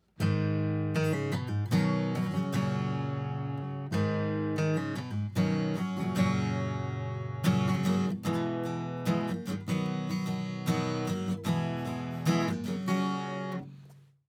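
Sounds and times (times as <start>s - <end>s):
acoustic guitar recorded through C414 microphone, preamp and compressor: 0.0s - 14.2s.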